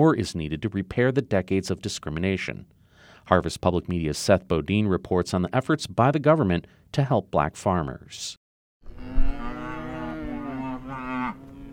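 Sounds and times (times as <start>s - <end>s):
speech: 0.0s - 8.4s
hungry cow mooing on a cold February afternoon: 8.9s - 11.7s.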